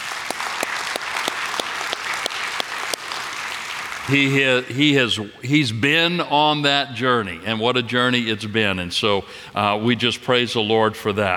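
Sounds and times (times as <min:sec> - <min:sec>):
crowd applauding: 0:00.0 - 0:05.0
speech: 0:04.1 - 0:11.3.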